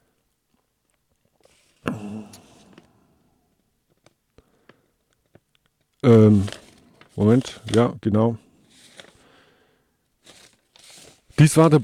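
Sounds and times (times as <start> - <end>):
speech: 6.0 - 6.6, 7.2 - 8.4, 11.4 - 11.8
pile of papers rustling and crinkling: 6.0 - 8.0, 8.6 - 9.4, 10.2 - 11.8.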